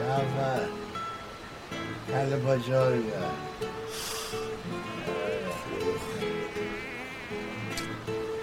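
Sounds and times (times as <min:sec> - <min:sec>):
speech: 0:00.1 - 0:00.9, 0:02.1 - 0:04.4
mosquito whining while hovering: 0:04.4 - 0:08.3.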